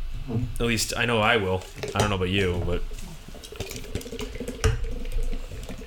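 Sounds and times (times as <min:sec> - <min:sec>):
speech: 0:00.3 - 0:03.0
nitro stout being poured into a glass: 0:02.9 - 0:05.8.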